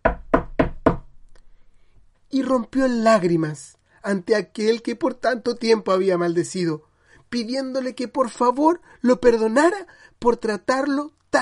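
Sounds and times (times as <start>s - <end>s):
firm knocks on a wooden door: 0.0s - 1.1s
speech: 2.3s - 11.4s.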